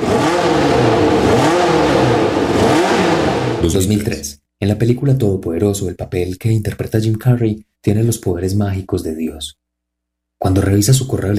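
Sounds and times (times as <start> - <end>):
1982 Formula 1 race car engine revving: 0.0 - 3.9
speech: 3.6 - 9.6, 10.4 - 11.3.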